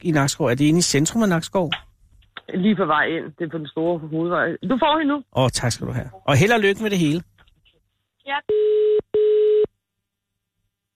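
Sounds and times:
speech: 0:00.0 - 0:01.9, 0:02.5 - 0:07.3, 0:08.2 - 0:09.4
electronic telephone ringing tone during a call transfer: 0:08.5 - 0:09.7.

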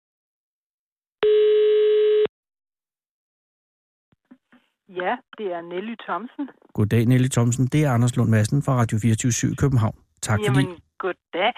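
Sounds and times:
landline telephone ringback tone from Copenhagen: 0:01.2 - 0:02.3
speech: 0:04.9 - 0:11.5.

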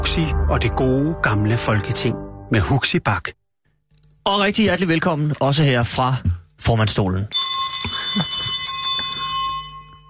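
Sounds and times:
speech: 0:00.2 - 0:03.4, 0:04.2 - 0:08.4
handbell rung by a chairman to open a meeting: 0:07.3 - 0:10.0.

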